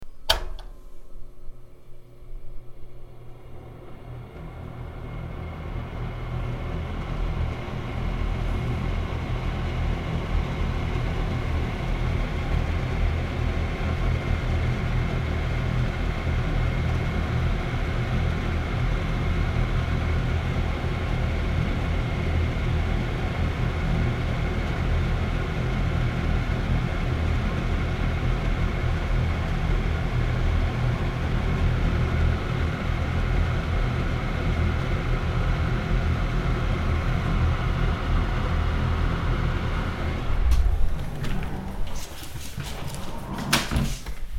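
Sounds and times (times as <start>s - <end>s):
kitchen fan: 0.0s - 44.3s.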